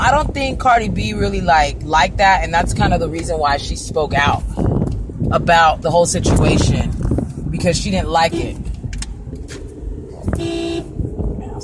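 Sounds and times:
rumbling road noise from inside a moving car: 0.0 - 11.6
speech: 0.3 - 4.6, 5.3 - 6.9, 7.6 - 8.7, 10.4 - 10.9
car horn blast in traffic in Arizona: 8.2 - 8.7, 10.3 - 11.0.

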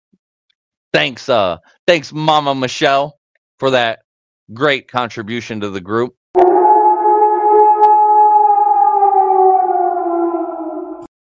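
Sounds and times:
speech: 0.9 - 6.5
chorus of wolves howling together: 6.4 - 11.1.

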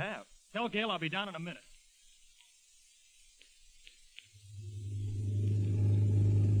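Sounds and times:
speech: 0.0 - 1.7
faint clicks: 1.7 - 2.6, 3.3 - 4.5
new car's engine rumbling low and steady down the street: 4.6 - 6.5.

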